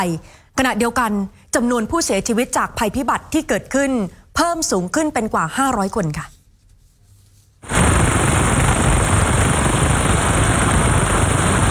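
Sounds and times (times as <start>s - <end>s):
speech: 0.0s - 6.4s
helicopter rotor roaring during Nepalese flash flood rescue: 7.6s - 11.6s.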